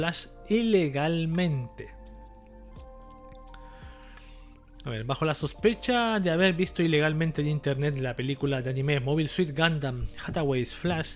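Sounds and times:
speech: 0:00.0 - 0:02.0, 0:04.8 - 0:11.1
person sipping and gulping water: 0:02.3 - 0:03.8.

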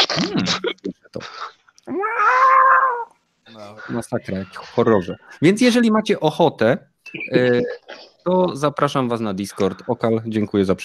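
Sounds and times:
speech: 0:00.2 - 0:02.1, 0:03.6 - 0:10.8
cats yowling and fighting outside window: 0:01.9 - 0:03.2.

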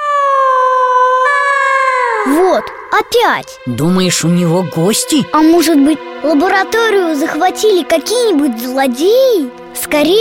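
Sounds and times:
loud howling wail: 0:00.0 - 0:02.9
speech: 0:02.2 - 0:10.2.

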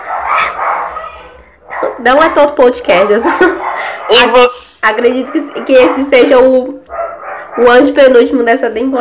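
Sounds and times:
dogs barking and yelping: 0:00.0 - 0:08.3
speech: 0:01.8 - 0:06.8, 0:07.6 - 0:08.9
laughter: 0:03.1 - 0:04.0.

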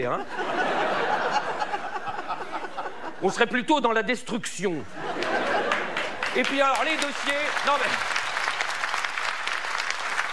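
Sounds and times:
speech: 0:00.0 - 0:00.6, 0:03.2 - 0:05.1, 0:06.4 - 0:08.2
laughter: 0:00.0 - 0:03.5, 0:04.8 - 0:08.0
audience applauding: 0:05.1 - 0:10.3.

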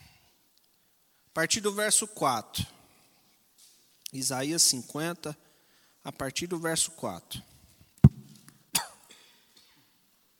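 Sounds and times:
speech: 0:01.4 - 0:02.8, 0:04.1 - 0:07.5
sharp dry allergic coughs: 0:08.7 - 0:09.5.

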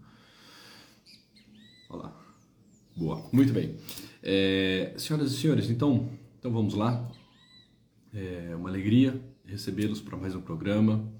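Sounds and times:
great kiskadee singing in the morning: 0:01.0 - 0:03.6, 0:07.1 - 0:07.8
speech: 0:03.0 - 0:07.2, 0:08.1 - 0:11.1.

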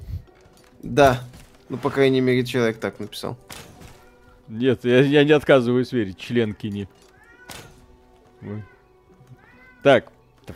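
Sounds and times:
speech: 0:00.8 - 0:03.6, 0:04.5 - 0:07.6, 0:08.4 - 0:08.7, 0:09.8 - 0:10.5
cat meowing: 0:07.1 - 0:09.9.

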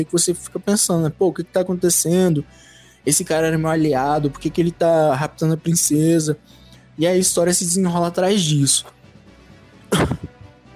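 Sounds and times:
speech: 0:00.0 - 0:09.0
single sharp explosive cough with a rough catch: 0:09.9 - 0:10.4.

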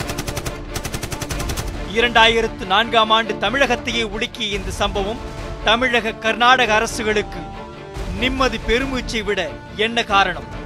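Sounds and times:
rapid sustained burst of automatic gunfire: 0:00.0 - 0:01.8
speech: 0:02.0 - 0:07.6, 0:08.2 - 0:10.6.

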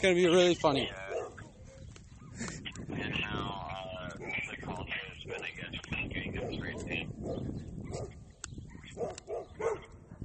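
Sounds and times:
speech: 0:00.0 - 0:01.0
steady wind noise: 0:00.0 - 0:10.2
dogs barking outdoors on a windy walk: 0:00.8 - 0:02.4, 0:04.1 - 0:04.5, 0:05.2 - 0:05.6, 0:06.2 - 0:10.2.

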